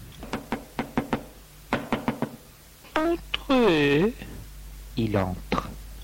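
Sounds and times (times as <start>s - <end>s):
knocking on a bedroom door: 0.3s - 2.4s
speech: 3.0s - 4.2s, 5.0s - 5.5s.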